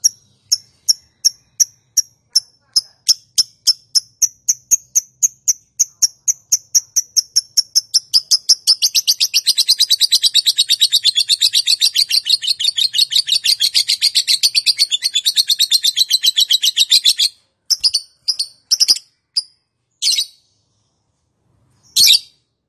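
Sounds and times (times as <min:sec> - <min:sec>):
lovebird giving sharp high chirps in konslet calling style: 0:00.0 - 0:21.0, 0:21.7 - 0:22.6.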